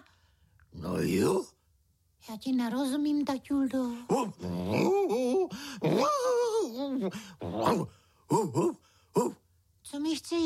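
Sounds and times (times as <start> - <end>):
speech: 0.8 - 1.6, 2.2 - 10.4
man imitating a dog growling, whining and barking: 4.1 - 6.8, 7.4 - 9.4.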